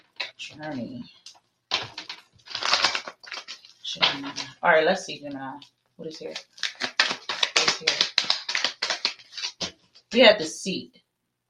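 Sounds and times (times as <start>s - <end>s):
speech: 0.4s - 1.3s, 3.9s - 6.5s, 7.8s - 8.1s, 10.1s - 11.4s
deck of tarot cards being shuffled during a tarot reading: 1.7s - 4.6s, 6.2s - 9.9s.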